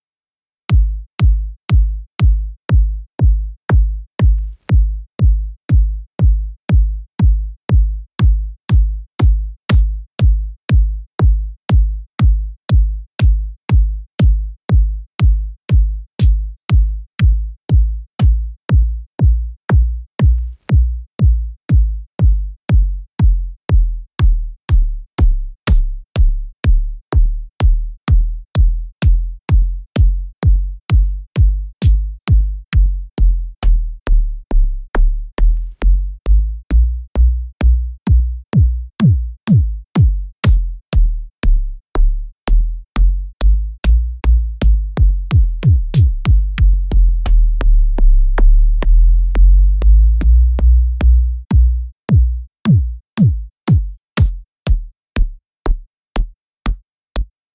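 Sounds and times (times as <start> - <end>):
bass drum: 0.7 - 57.3.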